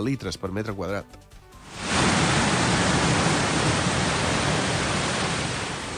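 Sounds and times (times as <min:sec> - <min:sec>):
speech: 0:00.0 - 0:01.4
floodwater rushing down a street: 0:01.6 - 0:05.9.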